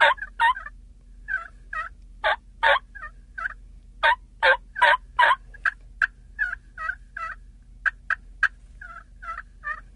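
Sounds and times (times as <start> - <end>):
zinc turkey mouth call imitating tree yelps: 0.0 - 9.9.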